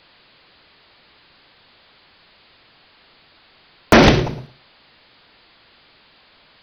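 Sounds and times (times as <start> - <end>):
big bang: 3.9 - 4.5
precision electrolysis: 3.9 - 4.5.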